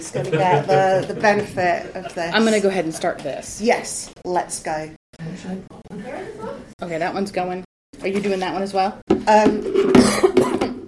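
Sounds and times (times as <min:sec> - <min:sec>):
laughter: 0:00.0 - 0:03.2
speech: 0:00.0 - 0:05.7, 0:06.8 - 0:10.4
person coughing hoarsely: 0:10.0 - 0:10.7.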